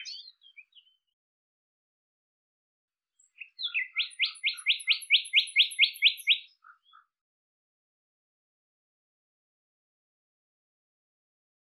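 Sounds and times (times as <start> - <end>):
bird chirping sharp rising notes: 0.0 - 1.2, 3.2 - 7.2.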